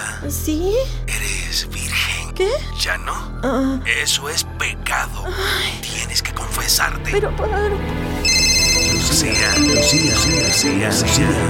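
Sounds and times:
speech: 0:00.2 - 0:08.2, 0:08.8 - 0:11.4
voices or music: 0:01.1 - 0:11.4
mobile phone ringtone: 0:08.2 - 0:11.3.

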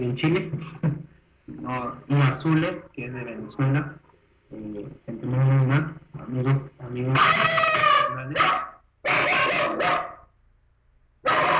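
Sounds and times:
speech: 0:00.0 - 0:01.0, 0:01.6 - 0:07.6
pet dog barking: 0:07.2 - 0:10.3, 0:11.2 - 0:11.5.

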